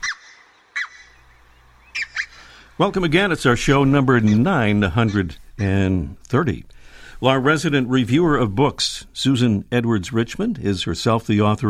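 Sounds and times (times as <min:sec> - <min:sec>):
red-breasted goose honking calls: 0:00.0 - 0:09.2
speech: 0:02.8 - 0:11.6.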